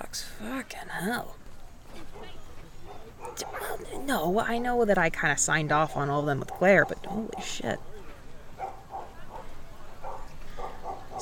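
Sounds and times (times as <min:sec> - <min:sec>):
steady noise: 0:00.0 - 0:11.2
speech: 0:00.1 - 0:01.4, 0:02.0 - 0:08.0
dogs barking faintly at a place with dogs and wolves: 0:01.9 - 0:04.4, 0:05.7 - 0:11.2.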